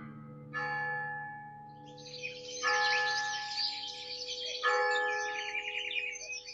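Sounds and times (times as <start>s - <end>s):
large bell tolling to summon people to sign a contract: 0.6s - 6.5s
birds chirping and twittering: 1.8s - 6.5s.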